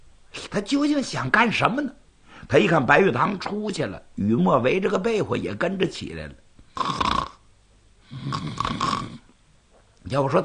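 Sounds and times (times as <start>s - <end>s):
speech: 0.5s - 7.0s, 10.1s - 10.4s
person imitating snoring like a child pretending to sleep: 6.7s - 7.4s, 8.0s - 9.3s.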